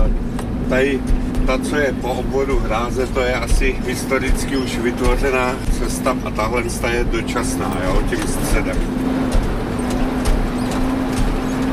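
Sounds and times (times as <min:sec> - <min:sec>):
car engine humming on a dirt track: 0:00.0 - 0:11.7
speech: 0:00.7 - 0:09.2.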